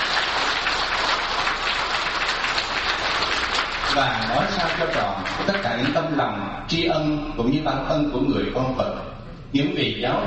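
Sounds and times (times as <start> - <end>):
large audience at a Buddhist gathering applauding: 0.0 - 6.0
speech: 4.0 - 10.2.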